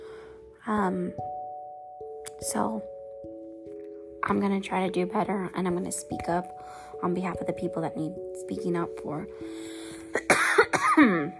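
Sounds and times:
speech: 0.7 - 1.4, 2.4 - 2.9, 4.3 - 10.4, 11.0 - 11.3
person coughing: 10.1 - 11.3.

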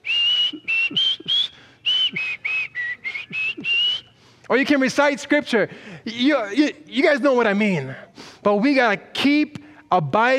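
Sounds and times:
person whistling a short tune: 0.0 - 4.2
speech: 4.5 - 10.3.

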